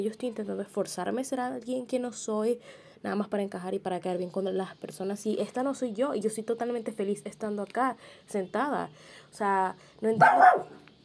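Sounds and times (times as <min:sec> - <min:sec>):
speech: 0:00.0 - 0:10.9
dog barking loudly with sharp yelps: 0:10.2 - 0:10.8.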